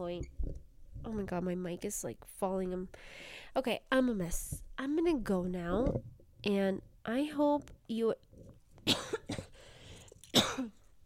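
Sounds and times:
speech: 0.0s - 8.2s
harsh coughs: 8.8s - 9.6s, 10.3s - 10.8s.

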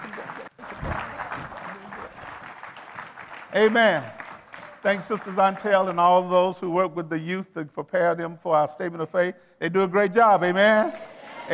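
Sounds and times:
church audience applause: 0.0s - 6.0s
speech: 3.6s - 4.2s, 4.8s - 11.5s.

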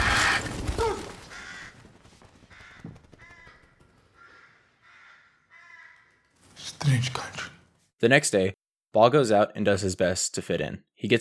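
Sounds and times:
crow-like bird cawing as it flies from a hole in a wall: 0.0s - 6.4s
speech: 6.8s - 11.1s.

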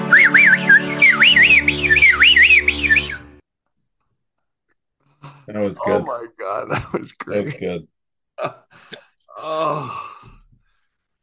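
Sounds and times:
man whistling a lively warbling tune: 0.0s - 3.3s
speech: 5.6s - 10.1s.

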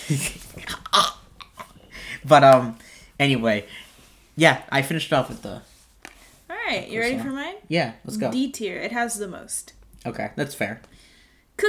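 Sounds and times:
speech: 0.1s - 1.2s, 2.3s - 3.8s, 4.4s - 5.7s, 6.7s - 11.6s
person burping: 0.6s - 1.3s
faint breathing: 1.8s - 4.4s, 10.9s - 11.6s.

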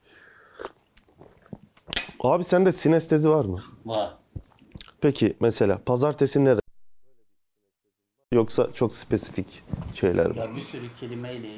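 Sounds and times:
person sipping a drink: 0.1s - 2.0s
soft wet mouth noises: 0.4s - 2.0s, 4.2s - 5.0s
swallow: 0.4s - 2.0s
speech: 2.2s - 4.2s, 5.0s - 6.6s, 8.4s - 11.5s.

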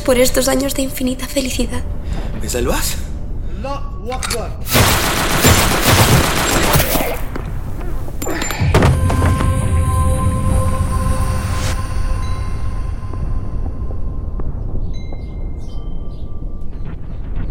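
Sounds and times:
speech: 0.0s - 4.8s
machine gun firing in a dramatized scene: 4.7s - 7.3s
lingering metallic ringing tones: 8.2s - 16.8s.

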